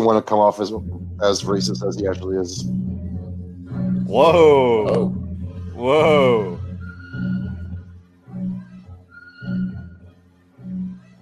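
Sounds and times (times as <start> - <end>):
speech: 0.0 - 2.8, 4.1 - 5.2, 5.8 - 6.6
hip hop track with deep bass: 4.1 - 5.2, 5.8 - 6.6.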